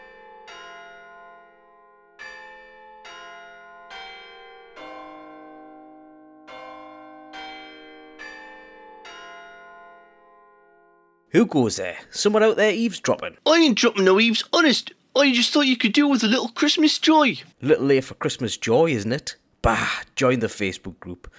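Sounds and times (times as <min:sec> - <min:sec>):
deep church bell tolling: 0:00.0 - 0:11.2
speech: 0:11.3 - 0:21.3.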